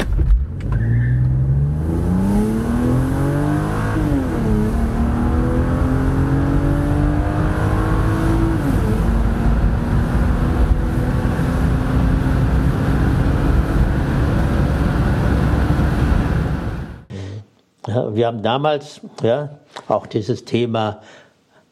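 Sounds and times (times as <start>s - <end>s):
Mercedes C 36 AMG engine accelerating hard through gear shifts on a test drive: 0.0s - 17.1s
speech: 18.2s - 21.2s.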